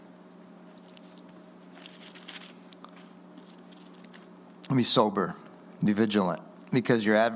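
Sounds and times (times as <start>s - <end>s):
steady low electrical hum: 0.0s - 7.3s
book page being turned: 0.7s - 4.3s
speech: 4.7s - 7.3s.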